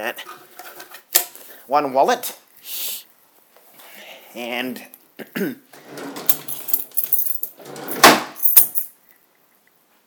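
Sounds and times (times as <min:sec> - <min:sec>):
speech: 0:00.0 - 0:00.6, 0:01.7 - 0:02.8, 0:04.4 - 0:06.0
set of keys jangling while handled: 0:06.0 - 0:09.0.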